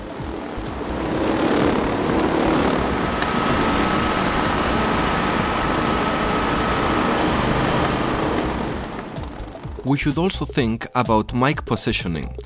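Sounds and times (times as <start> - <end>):
racing kart engines: 0.0 - 9.9
constant whine: 0.0 - 10.4
generator drone: 0.0 - 10.6
speech: 9.9 - 12.4.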